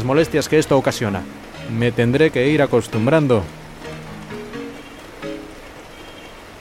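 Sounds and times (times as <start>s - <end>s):
speech: 0.0s - 3.6s
steady rain: 0.0s - 6.5s.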